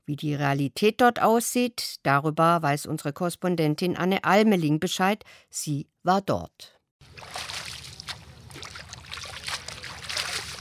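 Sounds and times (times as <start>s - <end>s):
speech: 0.1s - 7.6s
bunch of leaves swished and rinsed in sandy river water: 7.0s - 10.6s
low constant rumble: 7.0s - 10.6s.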